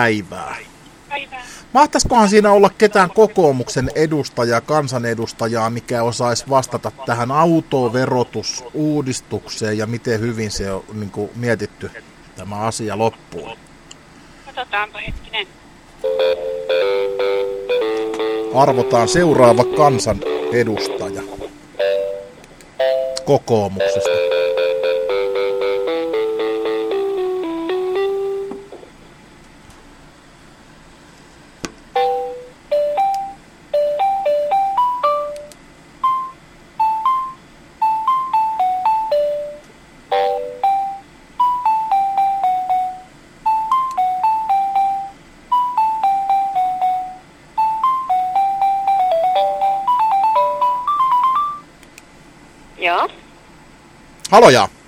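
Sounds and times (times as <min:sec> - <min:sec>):
speech: 0:00.0 - 0:13.7, 0:14.6 - 0:21.3, 0:23.3 - 0:24.4, 0:54.4 - 0:54.8
phone line ringing on an outgoing call: 0:16.0 - 0:28.6, 0:32.0 - 0:51.7.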